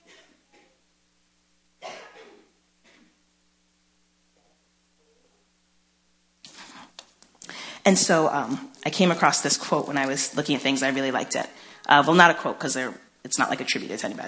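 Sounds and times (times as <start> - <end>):
person coughing: 1.8 - 3.2
speech: 7.9 - 14.2.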